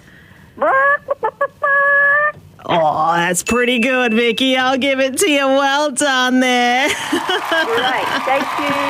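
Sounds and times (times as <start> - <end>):
caller imitating a chicken clucking: 0.6 - 2.4
speech: 2.8 - 8.8.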